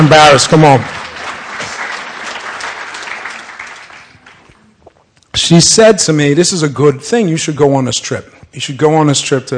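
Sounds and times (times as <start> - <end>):
speech: 0.0 - 1.0, 5.4 - 9.5
room full of people applauding: 0.0 - 4.8.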